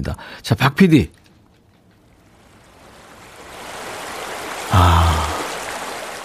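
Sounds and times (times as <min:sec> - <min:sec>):
speech: 0:00.0 - 0:01.2
stream water flowing: 0:01.9 - 0:06.2.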